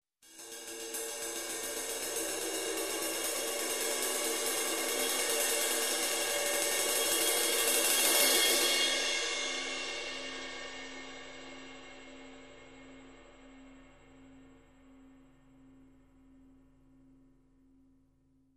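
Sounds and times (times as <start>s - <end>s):
ride cymbal swell: 0.3s - 14.8s.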